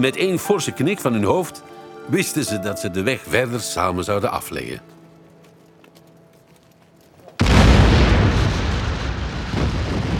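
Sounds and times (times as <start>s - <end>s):
speech: 0.0s - 5.0s
huge explosion blowing up a pontoon bridge: 7.4s - 10.1s.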